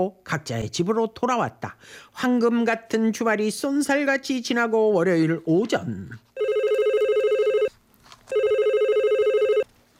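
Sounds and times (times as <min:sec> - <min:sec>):
speech: 0:00.0 - 0:06.3
telephone ringing with warbling trill: 0:06.4 - 0:09.7.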